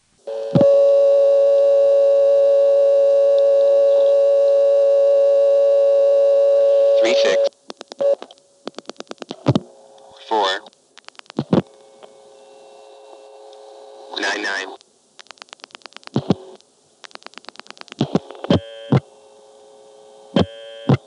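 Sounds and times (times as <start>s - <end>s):
long steady telephone exchange supervision test tone on a trunk: 0.2s - 8.3s, 11.6s - 14.8s, 17.2s - 21.0s
short interrupted telephone exchange tone pulses: 0.3s - 7.5s
pulse-dialing clicks on a telephone trunk: 7.0s - 10.1s, 10.7s - 12.2s, 14.8s - 19.1s, 20.4s - 21.0s.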